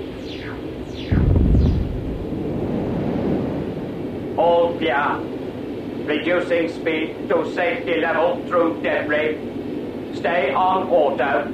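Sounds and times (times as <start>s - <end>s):
broad steady roar: 0.4s - 5.3s
auto-guided aqua rocket firing with a low rumbling whoosh: 0.9s - 3.9s
speech: 4.8s - 5.3s, 6.1s - 11.5s.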